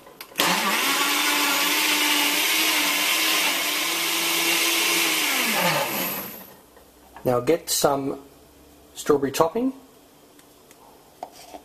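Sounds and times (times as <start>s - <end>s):
blender running on high speed: 0.4s - 6.5s
speech: 7.2s - 8.3s, 9.0s - 9.8s.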